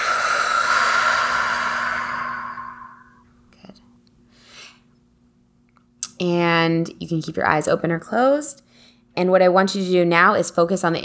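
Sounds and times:
long slow exhale during a guided breathing exercise: 0.0s - 3.2s
speech: 6.2s - 11.0s.

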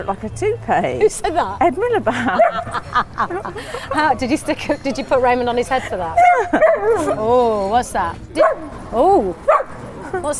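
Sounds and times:
speech: 0.0s - 10.3s
laughter: 1.6s - 7.6s
female pet dog barking and yelping: 2.3s - 2.8s, 6.2s - 7.2s, 9.5s - 9.8s.

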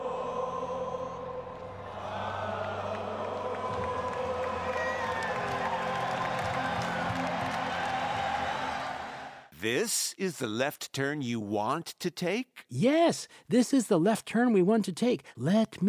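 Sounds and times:
huge concert crowd singing an anthem at a West Midlands venue: 0.0s - 9.5s
speech: 9.6s - 15.8s.

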